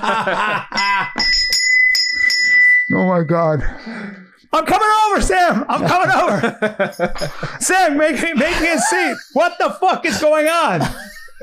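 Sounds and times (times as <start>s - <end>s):
laughter: 0.0s - 1.2s, 5.6s - 11.4s
speech: 0.0s - 1.4s, 2.9s - 11.4s
bright bell ringing: 0.6s - 3.6s, 5.9s - 8.0s.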